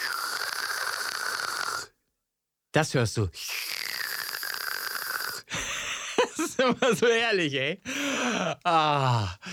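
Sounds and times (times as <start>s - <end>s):
voice imitating e-cigarette being drawn on: 0.0s - 2.0s, 3.4s - 5.6s
speech: 2.8s - 3.6s, 6.6s - 8.0s, 8.6s - 9.5s
laughter: 5.6s - 7.2s.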